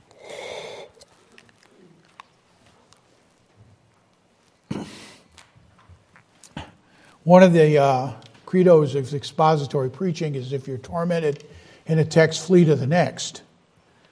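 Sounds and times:
faint breathy noises: 0.1s - 1.0s, 6.8s - 7.2s, 11.5s - 11.9s
preacher clearing throat during a sermon: 4.7s - 5.2s, 6.5s - 6.8s
speech: 7.3s - 13.5s.

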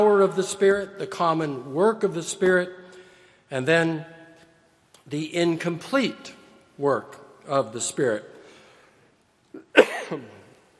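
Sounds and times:
speech: 0.0s - 2.8s, 3.5s - 4.2s, 5.0s - 8.3s, 10.1s - 10.4s
preacher coughing during a church sermon: 9.6s - 10.5s.

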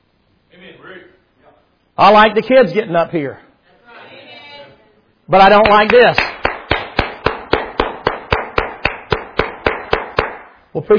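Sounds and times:
speech: 2.0s - 3.4s, 5.3s - 6.3s, 10.8s - 10.9s
one person clapping in a church, applauding kids who performed: 5.5s - 10.6s.

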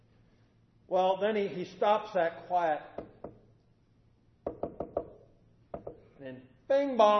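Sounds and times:
speech: 0.9s - 3.2s, 6.2s - 7.1s
firm knocking on a door: 3.0s - 3.4s, 4.4s - 6.0s.

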